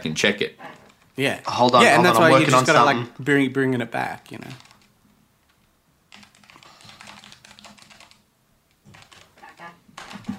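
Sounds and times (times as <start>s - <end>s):
speech: 0.0s - 4.7s
typing on a computer keyboard: 4.5s - 4.9s, 5.5s - 8.2s, 8.8s - 10.3s.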